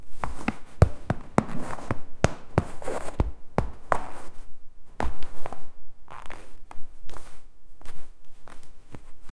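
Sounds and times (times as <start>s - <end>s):
footsteps on realistic wet tile floor: 0.1s - 9.2s.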